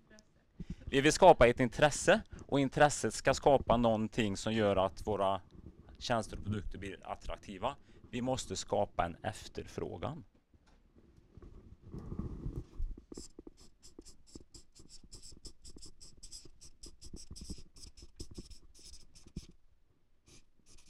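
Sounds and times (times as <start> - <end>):
speech: 0.9 - 10.3
marker squeaking and tapping across a board: 13.0 - 19.6, 20.3 - 20.8.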